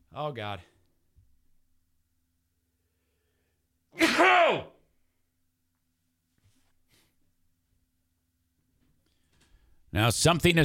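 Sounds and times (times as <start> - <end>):
speech: 0.2 - 0.8, 4.0 - 4.7, 10.0 - 10.6
person sneezing: 4.0 - 4.6.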